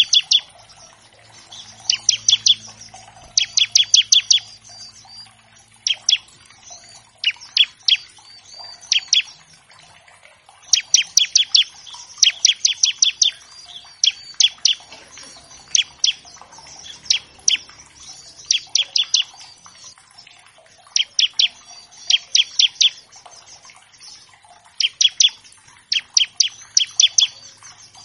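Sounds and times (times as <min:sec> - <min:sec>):
Bar-winged Prinia singing bright high chipping notes: 0:00.0 - 0:28.0.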